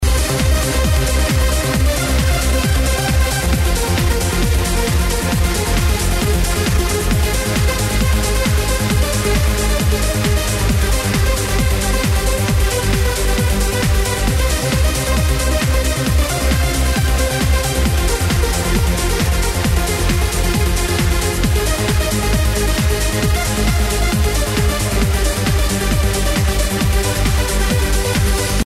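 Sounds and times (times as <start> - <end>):
uplifting electronic trance music: 0.0 - 28.6.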